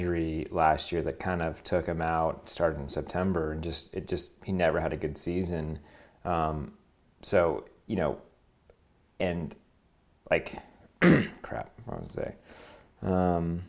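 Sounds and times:
speech: 0.0s - 8.3s, 9.2s - 9.6s, 10.3s - 13.6s
man clearing his throat: 11.0s - 11.6s.

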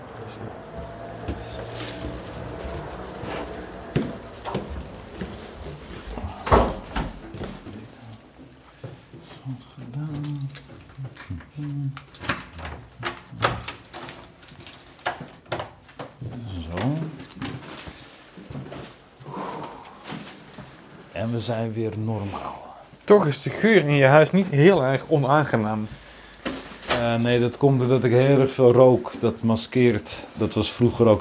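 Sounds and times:
footsteps climbing a flight of stairs indoors: 0.0s - 21.1s
creaks between steps on stairs: 0.0s - 21.3s
speech: 21.2s - 22.5s, 23.1s - 26.0s, 27.0s - 31.2s.

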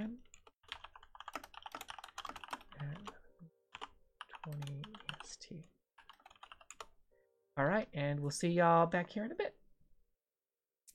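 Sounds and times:
rapid typing on a computer keyboard: 0.2s - 5.3s, 6.0s - 6.9s
speech: 5.3s - 5.8s, 7.6s - 9.6s.

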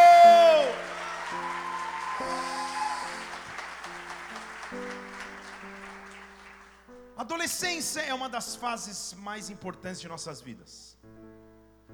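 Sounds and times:
audience applauding at a worship service: 0.0s - 6.9s
speech: 7.3s - 11.0s.

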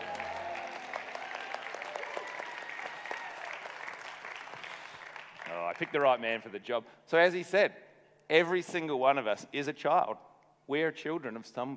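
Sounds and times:
audience applause: 0.0s - 6.3s
speech: 5.8s - 11.7s.

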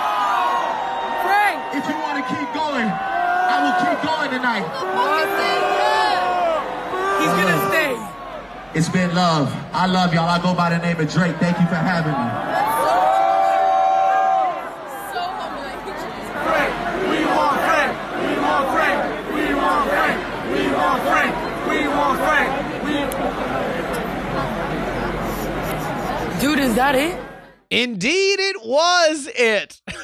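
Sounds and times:
large crowd booing and jeering a performer: 0.0s - 27.5s
speech: 1.8s - 6.3s, 7.2s - 8.0s, 8.7s - 12.4s, 26.6s - 29.8s
laughter: 24.0s - 26.6s, 29.8s - 30.0s.

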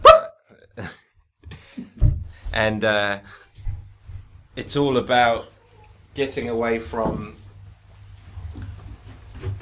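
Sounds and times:
dog yelping: 0.0s - 0.4s
speech: 0.8s - 1.0s, 2.5s - 3.4s, 4.6s - 5.6s, 6.2s - 7.4s.

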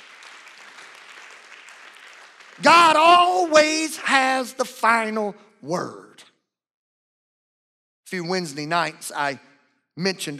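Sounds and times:
audience clapping hands: 0.0s - 4.3s
speech: 2.6s - 6.0s, 8.1s - 10.3s.

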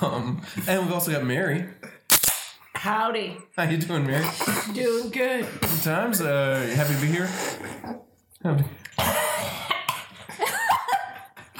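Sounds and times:
speech: 0.0s - 2.0s, 2.8s - 9.6s
raspy throat sound: 4.1s - 5.0s, 6.5s - 8.1s, 8.8s - 10.1s
person coughing: 4.2s - 5.0s, 9.0s - 10.1s
laughter: 9.5s - 11.5s.

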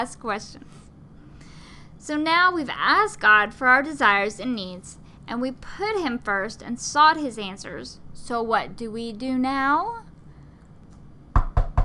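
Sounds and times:
speech: 0.0s - 0.9s, 2.0s - 10.1s
firm knocking on a door: 11.3s - 11.8s.

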